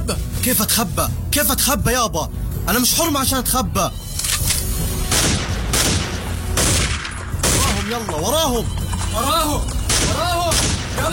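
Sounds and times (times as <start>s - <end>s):
speech: 0.1s - 4.5s, 7.9s - 11.1s
gunfire bursts: 5.0s - 8.1s, 9.8s - 11.1s.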